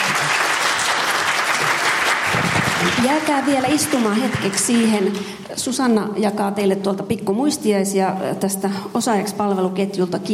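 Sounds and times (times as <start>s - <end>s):
audience applause in a hall after a panel discussion: 0.0s - 5.3s
speech: 3.0s - 10.3s.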